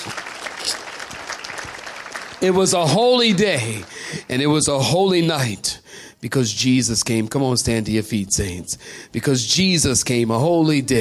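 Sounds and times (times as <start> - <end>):
audience clapping hands: 0.0 - 4.4
speech: 2.4 - 10.9.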